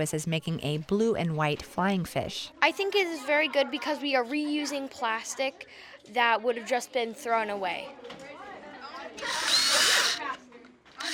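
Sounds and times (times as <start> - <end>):
speech: 0.0 - 8.3, 9.2 - 9.6
power drill drilling holes in plastic: 9.2 - 10.2.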